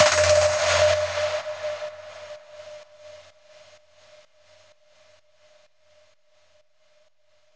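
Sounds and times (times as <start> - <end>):
sound effect hits: 0.0 - 2.7.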